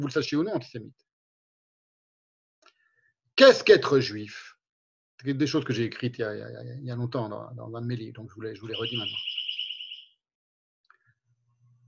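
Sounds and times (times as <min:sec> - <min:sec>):
speech: 0:00.0 - 0:01.1, 0:03.4 - 0:04.5, 0:05.2 - 0:09.4
faint chirp: 0:08.6 - 0:10.1
bird-song clock chiming with a whistled note: 0:08.7 - 0:09.9.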